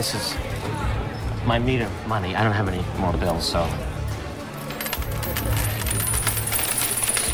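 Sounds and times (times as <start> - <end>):
speech: 0.0 - 0.8, 1.4 - 3.9, 5.3 - 5.8
coins being poured into knickers: 4.6 - 7.3.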